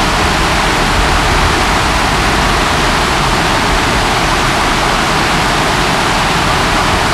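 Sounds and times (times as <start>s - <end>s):
waterfall: 0.0s - 7.1s.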